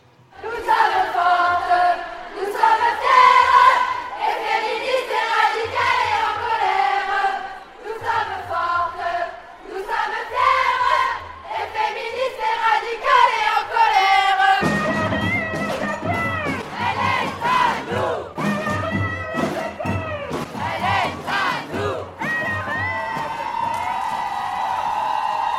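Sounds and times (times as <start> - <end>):
night protest march crowd chanting slogans in Paris: 0.3 - 23.4
steady drumbeat: 2.6 - 7.4, 14.6 - 25.4.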